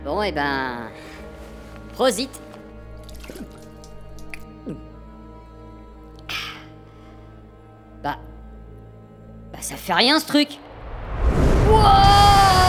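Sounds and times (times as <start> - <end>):
speech: 0.0 - 1.2, 2.0 - 2.5, 4.6 - 4.9, 8.0 - 8.3, 9.6 - 10.6, 11.7 - 12.3
liquid dripping in plops: 1.0 - 4.9
steady low hum: 10.6 - 12.6.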